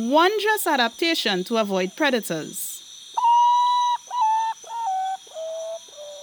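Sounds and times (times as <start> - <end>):
speech: 0.0 - 2.6
potoo's mournful whistled song: 3.1 - 6.2.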